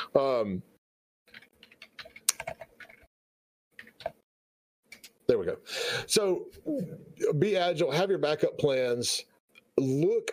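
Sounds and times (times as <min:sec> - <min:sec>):
speech: 0:00.2 - 0:01.4, 0:05.3 - 0:10.3
keyboard typing a message: 0:01.3 - 0:03.1.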